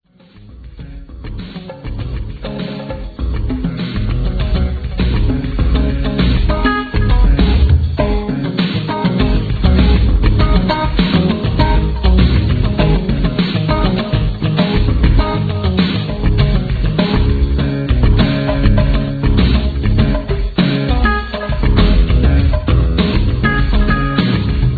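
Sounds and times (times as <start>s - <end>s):
drum solo: 0.3s - 24.7s.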